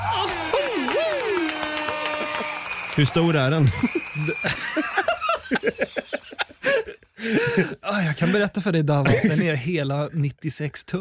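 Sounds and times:
laughter: 0.0 - 2.7, 3.5 - 8.4
burst of clapping and cheering: 0.0 - 6.8
speech: 3.0 - 5.8, 7.2 - 10.9.

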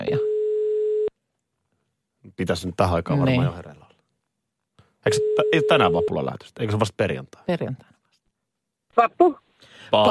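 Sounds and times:
speech: 0.1 - 0.3, 2.4 - 3.8, 5.0 - 7.9, 9.0 - 10.0
telephone ringback tone after dialing: 0.1 - 1.1, 5.1 - 6.2.

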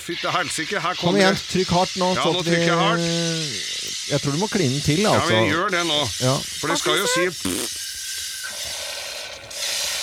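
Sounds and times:
speech: 0.0 - 7.8
champagne fizzing as it is carbonated: 2.2 - 10.0.

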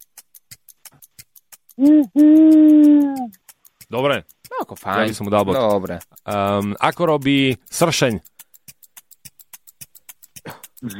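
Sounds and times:
faint rhythmic clicks: 0.0 - 10.9
person imitating owl hoots in an animal sounds game: 1.8 - 3.4, 10.5 - 10.9
speech: 1.8 - 8.3, 10.8 - 10.9.

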